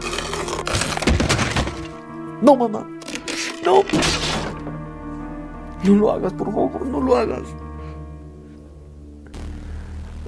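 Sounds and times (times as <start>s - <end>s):
steady tonal background: 0.0s - 10.2s
window glass being struck and broken: 0.1s - 2.0s, 3.0s - 4.6s
speech: 2.4s - 3.0s, 3.6s - 4.3s, 5.8s - 7.6s.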